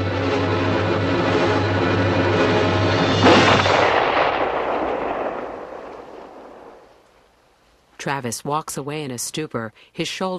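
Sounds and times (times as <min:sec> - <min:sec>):
rumbling noise: 0:00.0 - 0:09.4
gunshot in the evening air: 0:03.1 - 0:06.9
speech: 0:08.1 - 0:10.3.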